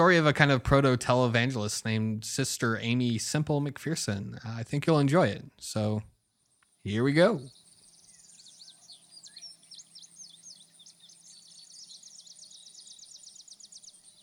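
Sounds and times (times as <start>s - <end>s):
speech: 0.0s - 6.1s, 6.8s - 7.6s
cicadas buzzing on a rural summer night: 6.2s - 14.2s
crickets chirping on a rural summer night: 6.4s - 14.2s.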